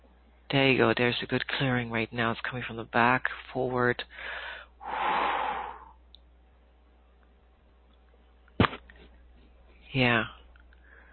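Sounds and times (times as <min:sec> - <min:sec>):
speech: 0:00.5 - 0:05.2, 0:09.9 - 0:10.4
long loud deep breath out: 0:04.1 - 0:06.0.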